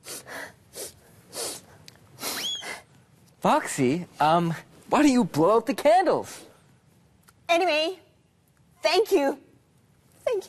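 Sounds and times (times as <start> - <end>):
person blowing nose: 0.0 - 2.9
speech: 3.4 - 6.5, 7.5 - 8.0, 8.8 - 9.5.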